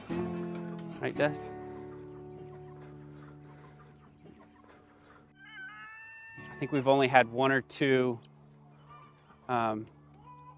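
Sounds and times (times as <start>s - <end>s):
flock of chickens clucking and murmuring: 0.0s - 7.3s, 8.0s - 10.3s
speech: 1.0s - 1.6s, 6.6s - 8.3s, 9.5s - 10.0s
higher chicken squawk: 1.9s - 6.9s.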